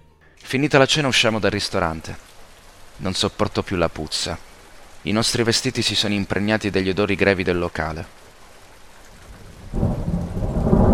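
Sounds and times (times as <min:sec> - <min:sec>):
speech: 0:00.5 - 0:02.3, 0:03.0 - 0:08.2
steady rain: 0:00.5 - 0:10.9
deep thunder rumble: 0:09.1 - 0:10.9.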